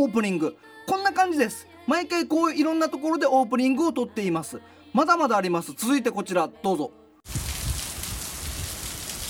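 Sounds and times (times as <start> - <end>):
speech: 0.0 - 7.4
steady rain pouring: 7.3 - 9.2.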